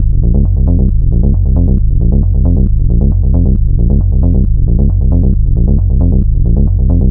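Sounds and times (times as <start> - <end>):
techno bass loop in G sharp: 0.0 - 7.0.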